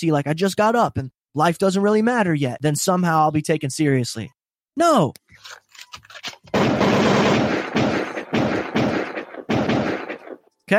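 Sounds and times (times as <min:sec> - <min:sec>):
speech: 0:00.0 - 0:05.6
rapid barrage of loud gunfire: 0:06.5 - 0:10.5.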